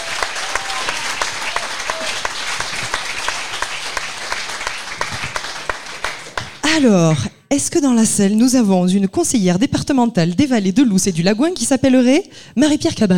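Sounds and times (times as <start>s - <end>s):
crowd applause with dense overlapping handclaps: 0.0s - 6.8s
speech: 6.8s - 13.1s.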